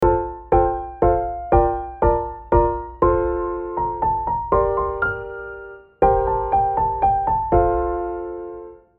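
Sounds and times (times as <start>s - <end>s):
piano jingle: 0.0s - 8.9s.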